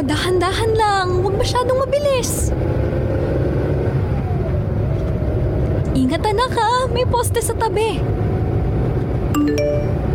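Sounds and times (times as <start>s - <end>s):
speech: 0.0s - 3.0s, 6.0s - 8.2s, 9.4s - 9.8s
low road and engine rumble of a car being driven: 0.0s - 10.1s
phone notification ding in a car: 9.4s - 10.1s.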